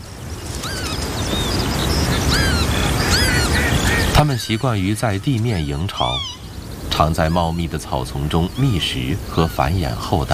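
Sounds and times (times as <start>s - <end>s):
northern lapwings tending chicks calling: 0.5s - 10.3s
speech: 4.2s - 6.4s, 7.0s - 10.3s.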